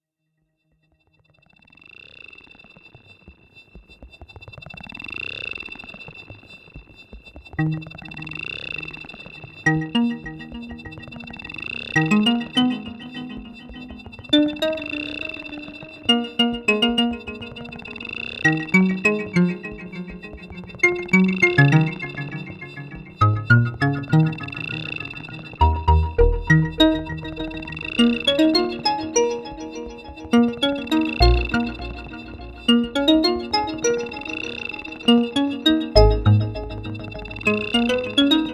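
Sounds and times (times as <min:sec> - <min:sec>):
ps3100 delay: 0:09.7 - 0:38.5.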